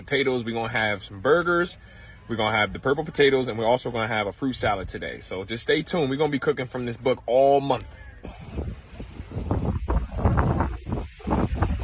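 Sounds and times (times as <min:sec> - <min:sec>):
speech: 0:00.1 - 0:08.8
strong wind at the beach buffeting the microphone: 0:08.3 - 0:11.8.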